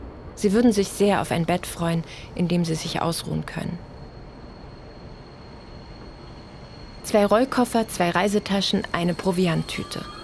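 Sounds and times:
crowded special passenger train rolling along rails from the Polish border to Leipzig: 0.0s - 10.2s
speech: 0.4s - 3.9s, 7.1s - 10.2s
faint high whine: 0.4s - 10.2s.

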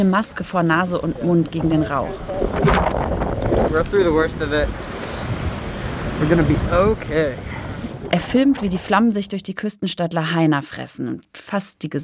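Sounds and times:
voices calling out over the noise: 0.0s - 3.0s, 3.7s - 9.3s
speech: 0.0s - 4.9s, 6.2s - 7.5s, 8.1s - 12.0s
wind and surf rushing against a microphone: 0.4s - 9.0s
breaking waves in the sea: 0.6s - 9.0s.

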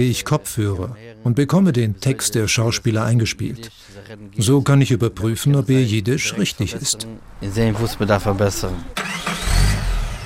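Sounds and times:
speech: 0.0s - 9.4s
car engine cranking and catching into a low steady rumble: 7.2s - 10.2s.

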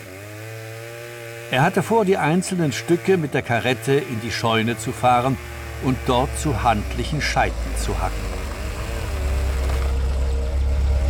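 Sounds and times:
speech: 1.5s - 8.3s
police car engine idling as it pulls up: 4.5s - 11.0s.

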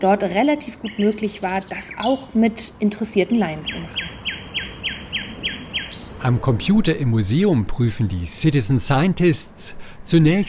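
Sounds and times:
speech: 0.0s - 4.2s, 6.2s - 10.4s
soft hiss: 0.0s - 10.4s
nightingale singing downward-slurred whistled notes: 0.8s - 2.3s, 3.6s - 6.1s.

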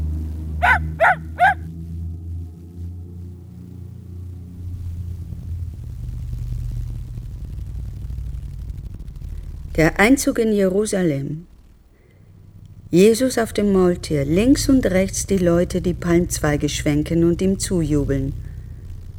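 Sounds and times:
low steady rumble: 0.0s - 19.1s
dog barking: 0.6s - 1.6s
speech: 9.8s - 11.5s, 12.9s - 18.4s.

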